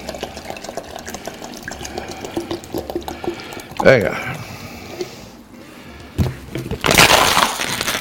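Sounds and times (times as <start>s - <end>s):
water pouring into a pot: 0.0s - 4.0s
speech: 3.8s - 4.3s
plastic water bottle being crushed: 6.2s - 7.9s.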